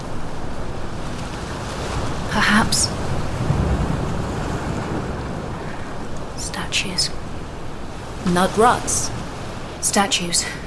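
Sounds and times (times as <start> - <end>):
wind buffeting the microphone: 0.0 - 9.8
ocean surf with waves breaking: 0.0 - 10.6
speech: 2.4 - 3.0, 6.7 - 7.2, 8.2 - 9.2, 9.8 - 10.6.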